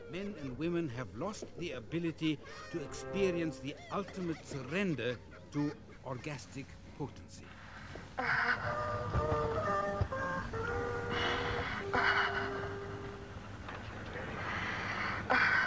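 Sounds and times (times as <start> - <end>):
speech: 0.1 - 7.6, 8.2 - 9.9
laughter: 2.4 - 6.5
deep heavy breathing: 10.7 - 13.2, 14.2 - 15.6
voiced tonal sighs: 11.0 - 13.0, 14.3 - 15.6.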